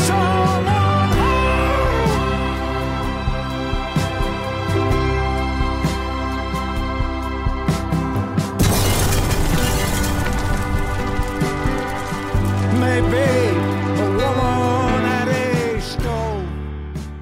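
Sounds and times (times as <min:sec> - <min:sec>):
music with a melodic singing voice: 0:00.0 - 0:17.2
jarring explosion: 0:08.6 - 0:12.8
noisy crackling debris: 0:08.6 - 0:14.3.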